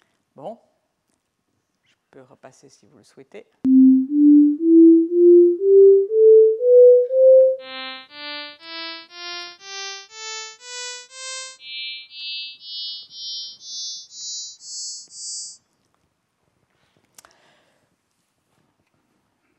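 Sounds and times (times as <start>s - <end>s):
speech: 0.4s - 0.7s, 2.1s - 3.7s
pure low synthetic tones stepping upward: 3.7s - 15.2s.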